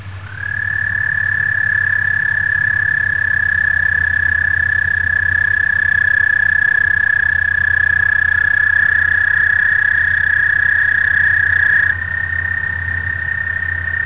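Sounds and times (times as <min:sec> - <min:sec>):
American toad calling: 0:00.0 - 0:14.0.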